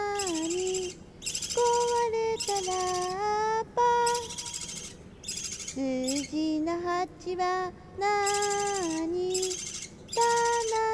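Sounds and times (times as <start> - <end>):
budgerigar chick calling: 0.1 - 3.2, 4.0 - 6.4, 8.2 - 10.9
speech: 7.0 - 9.2.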